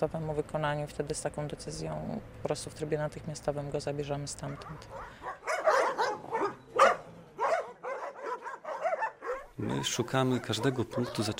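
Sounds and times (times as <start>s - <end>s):
speech: 0.0s - 5.4s, 9.6s - 11.3s
several dogs barking and yipping: 4.4s - 11.3s.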